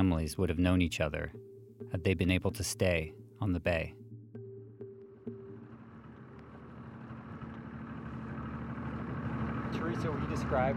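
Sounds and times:
speech: 0:00.1 - 0:04.0, 0:10.0 - 0:10.7
boat motor idling while approaching shore: 0:05.1 - 0:10.7.

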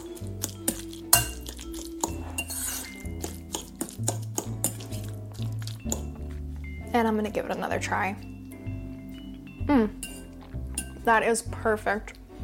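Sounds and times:
utensils clinking against a bowl mixing avocado salad with lemon and pepper: 0:00.0 - 0:06.8, 0:08.4 - 0:11.1
speech: 0:07.0 - 0:08.3, 0:09.7 - 0:10.0, 0:11.1 - 0:12.2.

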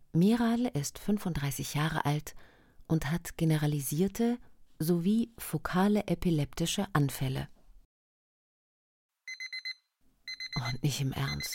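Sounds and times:
speech: 0:00.2 - 0:07.5, 0:10.6 - 0:11.5
electronic alarm clock beeping: 0:09.3 - 0:11.5.

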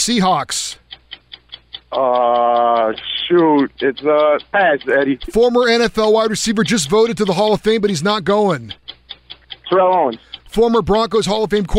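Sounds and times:
speech: 0:00.0 - 0:00.8, 0:01.9 - 0:08.8, 0:09.7 - 0:11.7
quiz timer clock ticking: 0:00.0 - 0:11.7.

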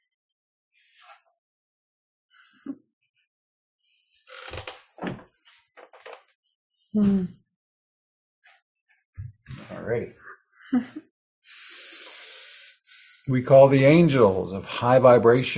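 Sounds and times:
door creaking: 0:04.3 - 0:06.3
door being handled and shut: 0:04.5 - 0:05.3
door thud: 0:05.0 - 0:05.3
speech: 0:06.9 - 0:07.4, 0:09.8 - 0:11.1, 0:13.3 - 0:15.5.

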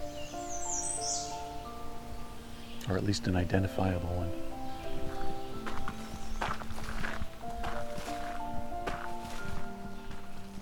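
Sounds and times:
warbler singing a high thin phrase of rapid notes: 0:00.0 - 0:10.5
speech: 0:02.9 - 0:04.5.

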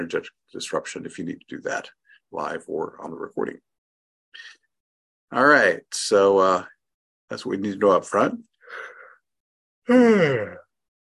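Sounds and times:
speech: 0:00.0 - 0:03.7, 0:04.3 - 0:04.6, 0:05.3 - 0:08.9, 0:09.9 - 0:10.6
person yawning: 0:09.9 - 0:10.7.

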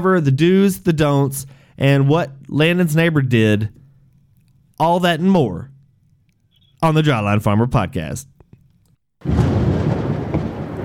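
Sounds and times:
speech: 0:00.0 - 0:03.8, 0:04.8 - 0:05.7, 0:06.8 - 0:08.3, 0:09.2 - 0:09.5
thunder rumbling from an oncoming storm: 0:09.2 - 0:10.8.

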